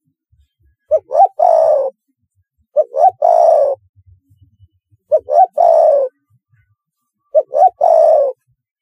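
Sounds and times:
spotted dove calling rising notes and descending coo: 0:00.9 - 0:02.0, 0:02.8 - 0:03.8, 0:05.1 - 0:06.2, 0:07.3 - 0:08.4.

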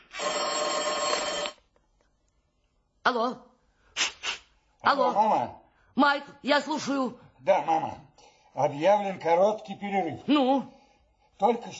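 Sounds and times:
telephone ringing with a bright trilling electronic ring: 0:00.0 - 0:01.7
speech: 0:03.1 - 0:03.5, 0:04.8 - 0:10.8, 0:11.4 - 0:11.7.

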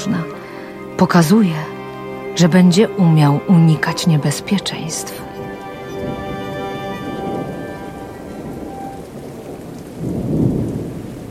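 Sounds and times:
deep rumble of thunder: 0:00.0 - 0:11.2
steady dense rain hissing in a thunderstorm: 0:00.0 - 0:11.2
speech: 0:01.0 - 0:01.7, 0:02.4 - 0:05.3.

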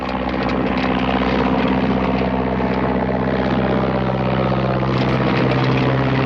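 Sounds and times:
small biplane propeller engine droning on takeoff run: 0:00.0 - 0:06.2.

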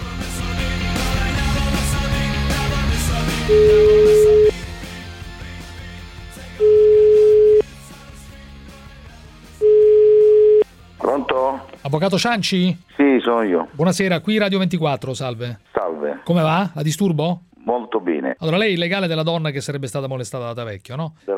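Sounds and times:
music: 0:00.0 - 0:20.6
speech: 0:03.5 - 0:03.8, 0:11.9 - 0:17.5, 0:18.3 - 0:21.3
ringback tone of an outgoing telephone call: 0:03.5 - 0:04.6, 0:06.6 - 0:07.6, 0:09.6 - 0:10.6.

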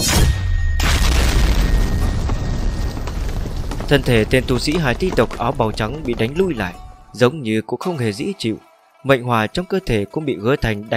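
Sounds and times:
loud explosion sound effect with deep rumble: 0:00.8 - 0:05.5
speech: 0:03.9 - 0:10.9.

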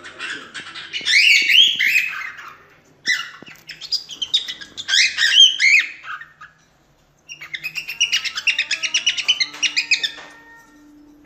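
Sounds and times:
cockatiels chattering: 0:00.0 - 0:06.6, 0:07.3 - 0:10.3
several cockatiels whistling a song: 0:00.2 - 0:10.8.

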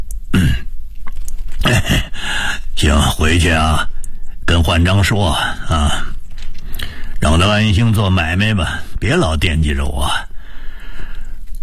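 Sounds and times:
narrator imitating an old man coughing in bed: 0:00.3 - 0:00.7, 0:01.6 - 0:02.2
throat clearing: 0:00.3 - 0:00.7
speech: 0:02.8 - 0:03.9, 0:04.5 - 0:06.1, 0:07.4 - 0:10.3.

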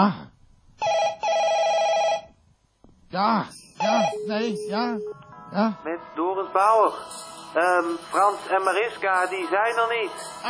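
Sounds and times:
speech: 0:00.0 - 0:00.2, 0:03.1 - 0:10.4
ringback tone of an outgoing telephone call: 0:00.8 - 0:02.3, 0:03.8 - 0:05.6.

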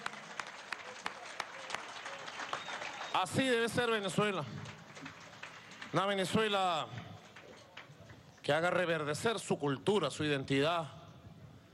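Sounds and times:
audience applause at a cultural event celebrating youth: 0:00.0 - 0:08.8
speech: 0:03.2 - 0:04.7, 0:05.9 - 0:07.0, 0:08.5 - 0:11.0.

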